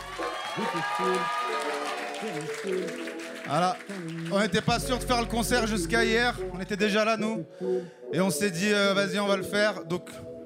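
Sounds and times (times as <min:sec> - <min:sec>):
concert crowd in Villefranche clapping and cheering: 0:00.0 - 0:05.1
speech: 0:00.6 - 0:10.3.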